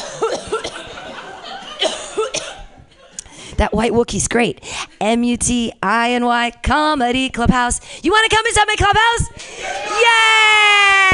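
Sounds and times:
person coughing: 0:00.0 - 0:00.9, 0:01.8 - 0:02.7
laughter: 0:00.7 - 0:03.2
speech: 0:03.6 - 0:11.1.

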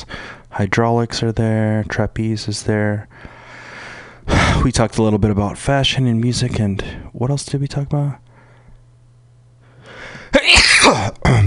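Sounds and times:
speech: 0:00.6 - 0:03.3, 0:04.6 - 0:08.2, 0:10.5 - 0:11.4
loud sneeze: 0:10.3 - 0:11.4.

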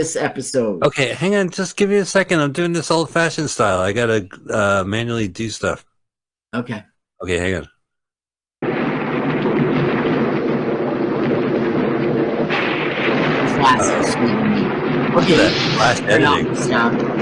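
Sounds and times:
speech: 0:00.0 - 0:05.9, 0:06.5 - 0:07.7, 0:13.6 - 0:14.5, 0:15.1 - 0:17.2
deep continuous rolling thunder in a thunderstorm: 0:08.6 - 0:17.2.

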